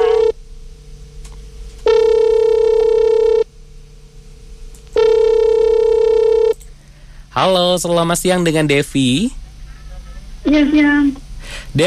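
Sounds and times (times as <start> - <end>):
ringback tone of an outgoing telephone call: 0.0 - 0.3, 1.9 - 3.4, 5.0 - 6.6
speech: 7.4 - 9.4, 10.5 - 11.8.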